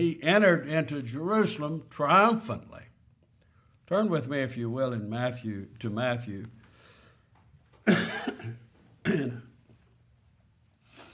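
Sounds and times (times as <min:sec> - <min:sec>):
speech: 0:00.0 - 0:02.9, 0:03.9 - 0:06.6, 0:07.9 - 0:09.5
person coughing harshly: 0:07.8 - 0:09.6.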